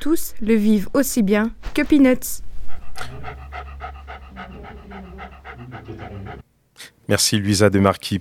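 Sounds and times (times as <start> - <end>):
speech: 0.0 - 2.4, 4.4 - 8.1
dog panting: 2.4 - 6.4.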